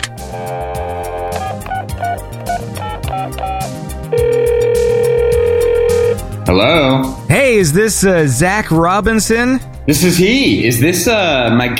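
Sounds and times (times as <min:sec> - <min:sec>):
music: 0:00.0 - 0:11.7
loud steady phone ringback tone: 0:00.4 - 0:06.4
short phone dialing beeps: 0:00.8 - 0:06.2
speech: 0:06.5 - 0:11.7.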